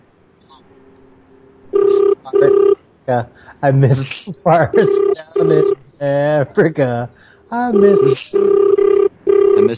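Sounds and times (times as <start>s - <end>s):
phone ringtone ringing with warbling rings: 1.8s - 2.8s, 4.8s - 5.8s, 7.7s - 9.7s
speech: 2.2s - 8.6s, 9.6s - 9.7s.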